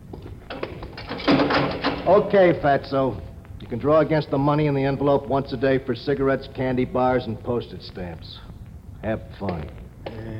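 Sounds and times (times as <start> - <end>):
jail cell door slamming shut in a loud clang: 0.5 - 2.2
heavy jail cell door sliding with a grinding rattle: 0.5 - 2.4
speech: 2.1 - 10.3.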